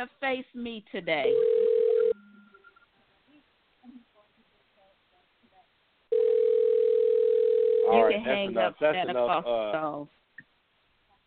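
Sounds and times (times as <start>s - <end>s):
speech: 0.0s - 1.6s, 7.9s - 10.2s
loud steady telephone tone over a phone line: 1.3s - 2.8s, 6.1s - 8.0s.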